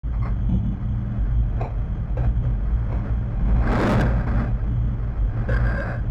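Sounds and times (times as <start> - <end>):
spaceship ambience: 0.0 - 6.0.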